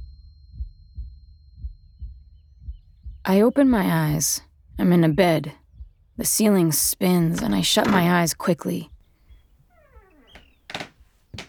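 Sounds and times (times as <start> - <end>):
speech: 3.2 - 5.6, 6.2 - 8.9
footsteps across creaky floorboards: 6.7 - 8.4, 9.7 - 11.4
door opening with wavering creak: 7.2 - 8.4, 9.7 - 11.4.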